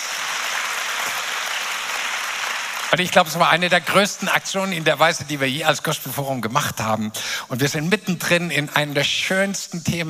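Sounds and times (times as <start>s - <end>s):
large audience applause: 0.0s - 5.0s
speech: 2.9s - 10.0s.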